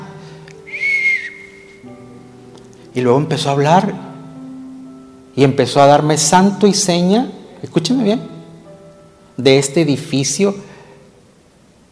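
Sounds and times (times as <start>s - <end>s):
person whistling one long steady high note: 0.6s - 1.9s
speech: 3.0s - 4.1s, 5.4s - 8.3s, 9.4s - 10.7s.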